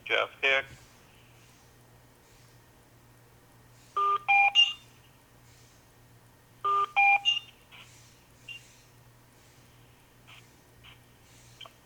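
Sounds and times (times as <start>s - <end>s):
faint steady hum: 0.0s - 11.8s
speech: 0.1s - 0.8s
conference call join beeps: 4.0s - 4.9s, 6.6s - 7.6s.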